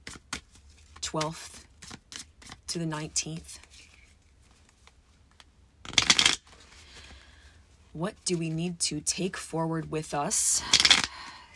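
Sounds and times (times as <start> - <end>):
tarot cards being shuffled in a riffle: 0.0 - 7.2, 10.7 - 11.5
speech: 1.1 - 1.6, 2.7 - 3.6, 8.0 - 11.0.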